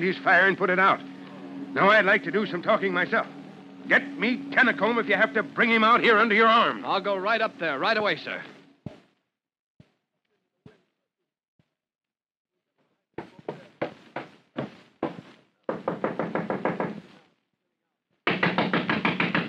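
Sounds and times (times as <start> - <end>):
speech: 0.0 - 8.5
loud pounding on a door: 13.2 - 17.1, 18.2 - 19.4.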